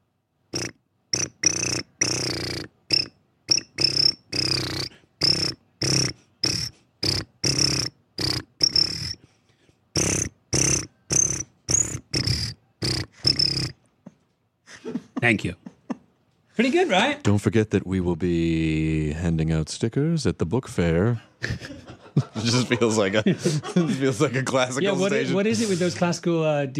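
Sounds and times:
voices imitating cricket chirps in a march-like rhythm: 0:00.6 - 0:09.2, 0:10.0 - 0:13.8
laughter: 0:14.7 - 0:16.1, 0:21.3 - 0:25.9
speech: 0:15.2 - 0:15.6, 0:16.6 - 0:21.3, 0:22.4 - 0:26.7.

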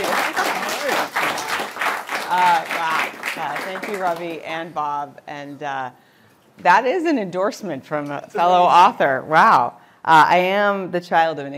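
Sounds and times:
room full of people applauding for an author: 0:00.0 - 0:04.3
speech: 0:03.7 - 0:11.5.

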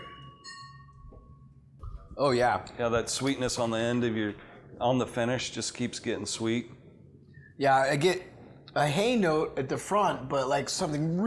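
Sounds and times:
drinking glasses clinking together in a toast: 0:00.0 - 0:01.5
speech: 0:02.2 - 0:06.8, 0:07.6 - 0:11.2.

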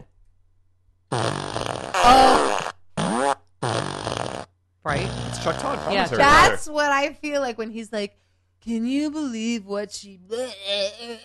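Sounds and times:
novelty fart machine blasts: 0:01.1 - 0:06.5
speech: 0:05.4 - 0:11.2.

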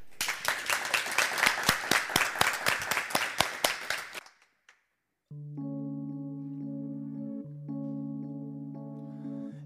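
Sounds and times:
studio audience applause: 0:00.0 - 0:04.5
sustained steady musical chords: 0:05.3 - 0:09.6.

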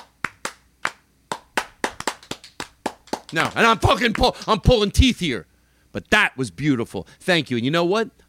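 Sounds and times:
sparse uneven half-hearted hand clapping from a few people: 0:00.0 - 0:04.5
speech: 0:03.3 - 0:08.2.

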